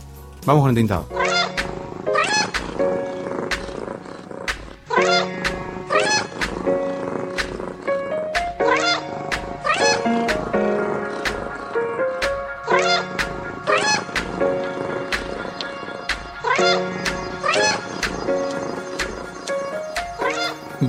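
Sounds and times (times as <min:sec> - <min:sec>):
speech: 0:00.4 - 0:01.2
black cat meowing in an alley on a stormy night: 0:01.1 - 0:04.2, 0:04.9 - 0:07.6, 0:08.6 - 0:10.4, 0:12.6 - 0:14.4, 0:16.4 - 0:18.0
steady rhythmic tapping beat: 0:01.3 - 0:20.8.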